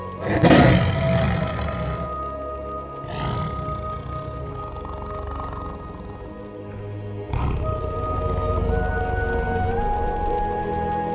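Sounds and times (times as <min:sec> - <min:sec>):
tiger on a lifeboat roaring: 0:00.2 - 0:02.3, 0:03.0 - 0:09.1
steady low rumble: 0:03.0 - 0:11.0.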